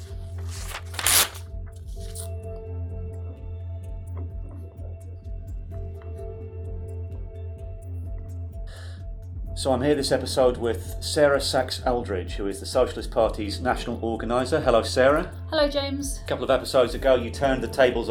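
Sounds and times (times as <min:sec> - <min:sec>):
sheet of paper crinkling and rustling: 0:00.0 - 0:02.3
speech: 0:09.6 - 0:18.1.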